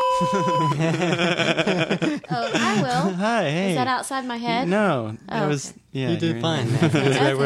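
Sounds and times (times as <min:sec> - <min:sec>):
steady electronic beep: 0:00.0 - 0:00.9
laughter: 0:00.0 - 0:03.7, 0:06.4 - 0:07.4
speech: 0:00.2 - 0:07.4.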